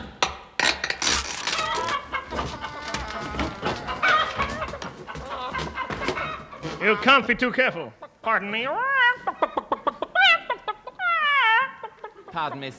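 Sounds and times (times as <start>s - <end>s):
people imitating chickens clucking and squawking: 1.6s - 12.7s
speech: 6.8s - 8.8s, 12.4s - 12.7s.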